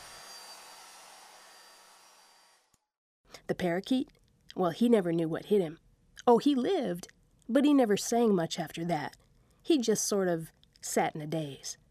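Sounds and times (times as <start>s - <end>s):
hair dryer blowing on high: 0.0s - 2.8s
speech: 3.5s - 11.8s.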